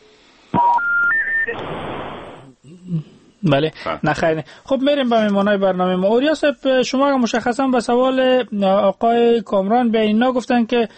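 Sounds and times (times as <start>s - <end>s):
steady telephone line hiss: 0.0s - 2.6s
three climbing electronic telephone tones of a call connecting: 0.6s - 1.7s
speech: 1.5s - 2.2s, 2.9s - 10.9s.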